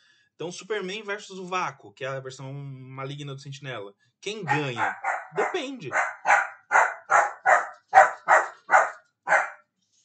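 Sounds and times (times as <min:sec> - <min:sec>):
speech: 0:00.4 - 0:06.1
female dog barking in a house: 0:04.4 - 0:09.7.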